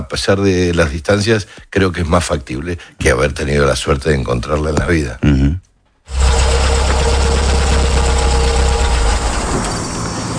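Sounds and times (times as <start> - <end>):
speech: 0.1 - 6.4
car engine idling: 6.1 - 10.3.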